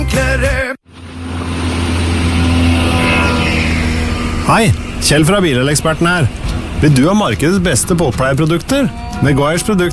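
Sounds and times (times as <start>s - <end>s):
badly running car engine with a strained whine: 0.0s - 9.9s
speech: 4.5s - 9.9s.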